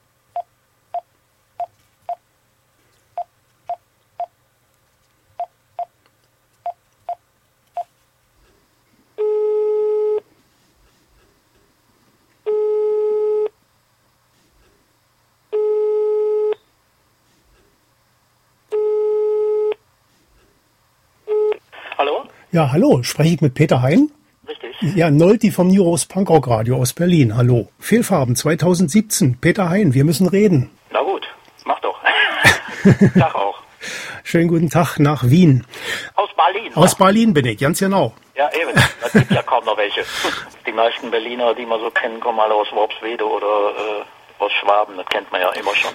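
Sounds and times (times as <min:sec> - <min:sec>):
long steady telephone ringing tone: 0:09.2 - 0:10.2, 0:12.5 - 0:13.5, 0:15.5 - 0:16.6, 0:18.7 - 0:19.8
speech: 0:22.0 - 0:24.2, 0:24.8 - 0:30.8, 0:32.8 - 0:33.4, 0:34.3 - 0:36.1, 0:36.7 - 0:38.2, 0:39.1 - 0:45.9
laughter: 0:32.0 - 0:33.4, 0:38.6 - 0:39.6.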